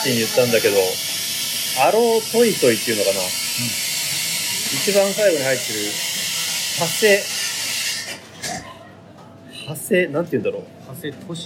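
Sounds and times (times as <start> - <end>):
speech: 0.0 - 1.2, 1.8 - 3.8, 4.7 - 6.0, 6.8 - 7.4, 9.7 - 11.4
espresso machine hissing steam: 0.0 - 8.3.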